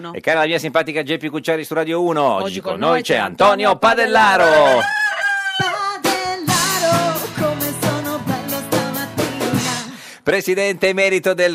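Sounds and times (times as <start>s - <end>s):
speech: 0.0s - 5.0s, 10.3s - 11.5s
rooster crow imitated by a radio studio band: 4.4s - 6.0s
bouncy rhythmic radio studio band music with a steady beat: 5.6s - 10.0s.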